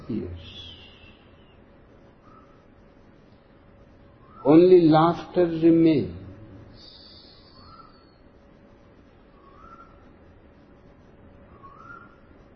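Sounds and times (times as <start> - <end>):
cuckoo calling: 0.0 - 2.7, 4.1 - 4.7, 6.8 - 8.3, 9.3 - 10.1, 11.5 - 12.4
constant hiss of outdoor noise: 0.0 - 12.5
speech: 0.1 - 0.7, 4.4 - 6.2.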